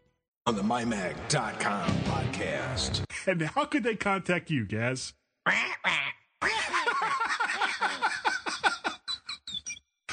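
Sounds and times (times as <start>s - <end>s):
speech: 0.5s - 6.0s
person imitating parrot squawks: 5.5s - 6.2s
laughter: 6.4s - 9.4s.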